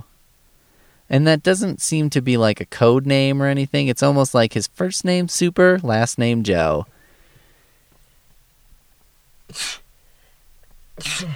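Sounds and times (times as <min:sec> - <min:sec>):
speech: 0:01.1 - 0:06.9, 0:11.0 - 0:11.3
person sneezing: 0:09.5 - 0:09.9, 0:11.0 - 0:11.3.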